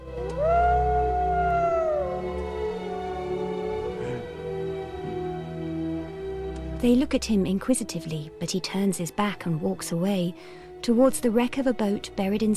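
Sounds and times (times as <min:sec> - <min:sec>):
wolves howling on a hill: 0:00.3 - 0:04.3
steady low drone: 0:00.3 - 0:06.0
speech: 0:06.8 - 0:12.5.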